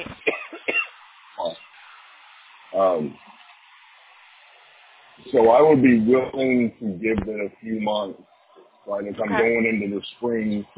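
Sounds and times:
person coughing: 0:00.0 - 0:00.9
speech: 0:02.8 - 0:03.2, 0:05.3 - 0:08.3, 0:08.9 - 0:10.7.

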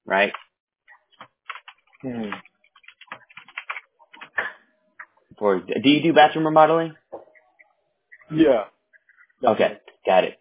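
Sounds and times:
speech: 0:00.1 - 0:00.4, 0:02.0 - 0:02.5, 0:05.4 - 0:07.0, 0:08.3 - 0:08.7, 0:09.4 - 0:10.3
typing on a computer keyboard: 0:01.2 - 0:04.4.

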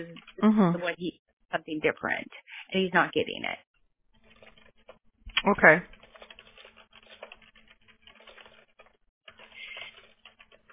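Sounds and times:
speech: 0:00.0 - 0:03.7, 0:05.4 - 0:06.0
typing on a computer keyboard: 0:05.9 - 0:10.7.

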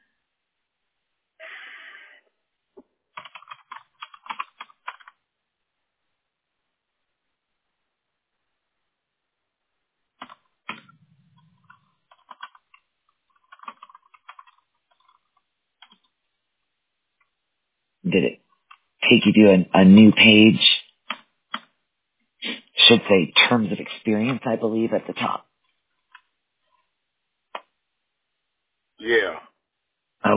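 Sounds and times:
computer keyboard typing: 0:03.2 - 0:05.2, 0:10.2 - 0:16.1, 0:21.0 - 0:21.7
speech: 0:18.1 - 0:18.4, 0:19.1 - 0:20.7, 0:22.9 - 0:25.5.

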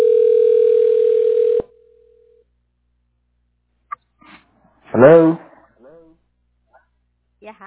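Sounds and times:
telephone ringing tone: 0:00.0 - 0:02.3
speech: 0:05.0 - 0:05.4.

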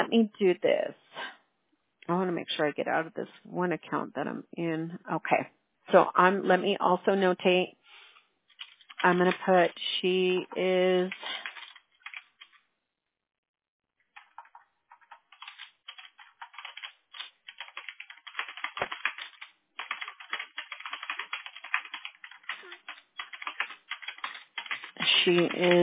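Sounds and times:
speech: 0:00.1 - 0:01.0, 0:02.1 - 0:07.8, 0:09.0 - 0:11.4, 0:25.3 - 0:25.8
fast hard typing on computer keyboard: 0:08.5 - 0:09.6, 0:11.2 - 0:12.6, 0:14.1 - 0:25.8.

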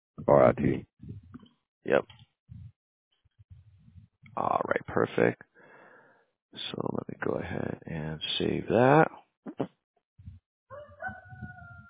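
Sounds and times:
speech: 0:00.2 - 0:01.2, 0:01.8 - 0:02.2, 0:04.4 - 0:05.5, 0:06.5 - 0:09.8
rooster crowing in a long drawn-out call: 0:10.7 - 0:11.8.

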